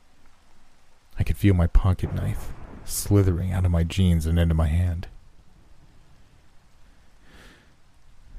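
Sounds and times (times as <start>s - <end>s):
steady soft rainfall: 0.0s - 8.3s
speech: 1.2s - 5.2s.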